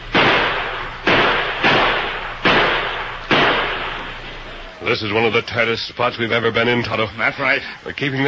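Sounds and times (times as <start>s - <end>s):
loud gunshots: 0.0s - 4.7s
speech: 4.8s - 8.2s.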